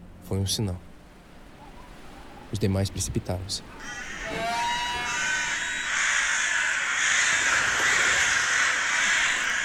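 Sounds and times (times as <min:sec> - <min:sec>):
speech: 0:00.3 - 0:00.9, 0:02.5 - 0:04.4
crows cawing: 0:03.8 - 0:09.6.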